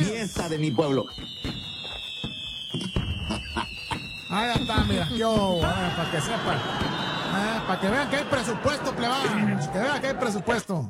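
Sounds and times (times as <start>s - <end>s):
fireworks crackling pops: 0.0s - 7.2s
descending firework whistle: 0.0s - 9.2s
speech: 0.2s - 1.6s, 4.3s - 10.8s
laughter: 3.2s - 4.0s, 5.7s - 10.7s.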